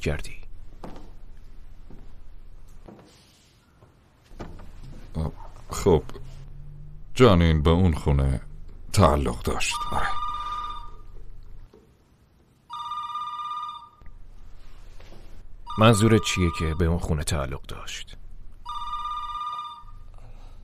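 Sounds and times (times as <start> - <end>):
speech: 0.0 - 0.4, 5.2 - 6.2, 7.2 - 10.2, 15.8 - 18.2
telephone ringing: 9.5 - 11.3, 12.7 - 14.0, 15.7 - 17.0, 18.6 - 20.1.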